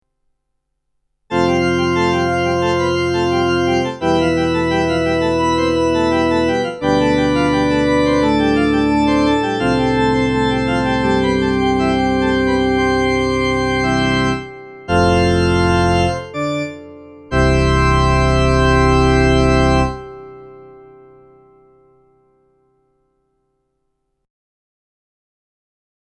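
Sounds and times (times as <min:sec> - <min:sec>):
CLP575 digital piano playing an organ sound: 0:01.3 - 0:22.2.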